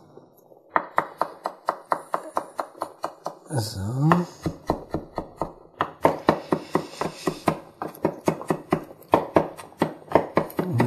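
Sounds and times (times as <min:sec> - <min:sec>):
knife chopping fresh parsley on a cutting board: 0:00.7 - 0:10.8
speech: 0:03.5 - 0:04.6.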